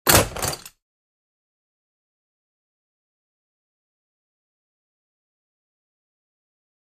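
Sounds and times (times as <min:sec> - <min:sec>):
metal latch fast impact: 0:00.1 - 0:00.7.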